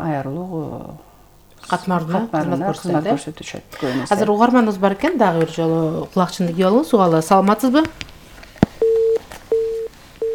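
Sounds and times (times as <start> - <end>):
speech: 0.0 - 0.6, 1.6 - 8.1
telephone busy signal beeps after a dropped call: 8.8 - 10.3.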